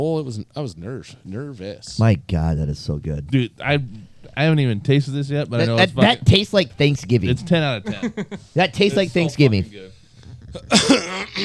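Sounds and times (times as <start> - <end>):
speech: 0.0 - 11.4
laughter: 7.8 - 9.2
raspy throat clearing: 10.5 - 11.4.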